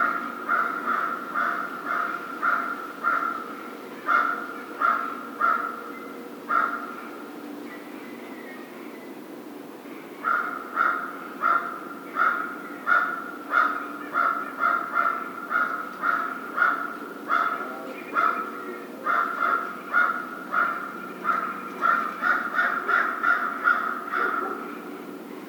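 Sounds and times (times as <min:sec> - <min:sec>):
American crow raspy cawing: 0:00.0 - 0:05.9, 0:06.5 - 0:07.1, 0:10.2 - 0:24.9.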